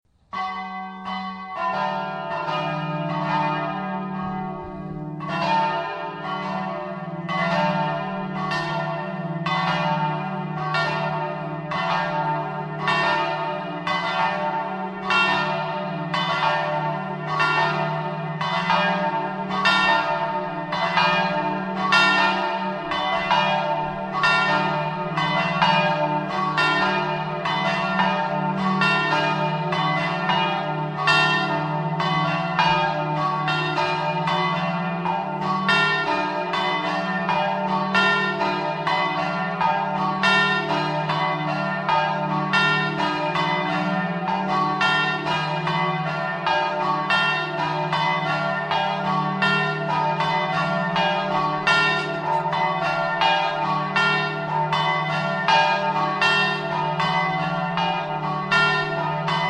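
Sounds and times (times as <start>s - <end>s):
bells in Purgessimo: 0.1s - 59.4s.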